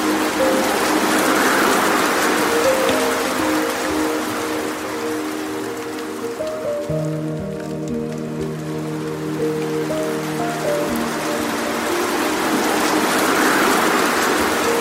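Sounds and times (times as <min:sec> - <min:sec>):
slow relaxing piano music: 0:00.0 - 0:14.8
soft water stream flowing: 0:00.0 - 0:14.8.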